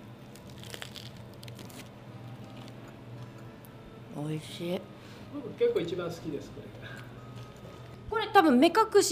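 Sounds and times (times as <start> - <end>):
low steady hum: 0.0 - 9.1
crunchy bites into soft bread baked with avocado in a green dough: 0.1 - 2.8
speech: 4.2 - 7.0, 8.3 - 9.1.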